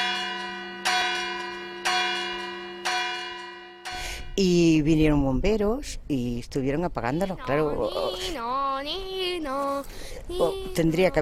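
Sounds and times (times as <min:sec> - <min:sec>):
church bells ringing to alert the neighbours during a large house fire: 0:00.0 - 0:04.3
speech: 0:04.4 - 0:11.2.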